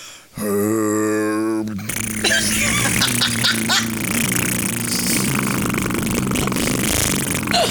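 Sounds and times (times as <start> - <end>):
speech: 0.4 - 0.7
deep droning throat-singing tone: 0.4 - 7.6
sputtering cheek-flapping fart noises: 1.6 - 7.6.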